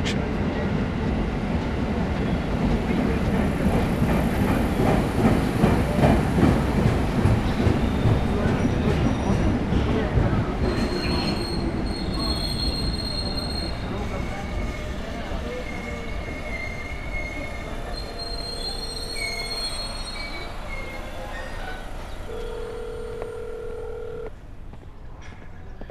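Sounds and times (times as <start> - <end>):
train wheels grinding on rails passing through a station: 0.1 - 23.4
metallic squeals and high-pitched screeching of train wheels: 15.6 - 21.9.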